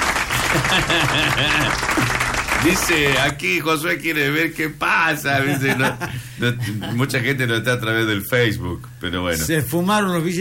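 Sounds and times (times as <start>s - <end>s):
audience applauding after a magic trick: 0.0s - 3.4s
laughter: 0.2s - 2.4s, 5.4s - 7.1s
speech: 0.5s - 10.4s.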